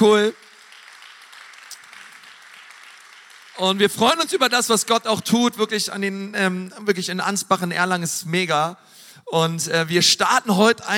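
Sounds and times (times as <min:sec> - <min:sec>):
speech: 0:00.0 - 0:00.4, 0:03.6 - 0:10.9
audience applause: 0:00.0 - 0:04.4.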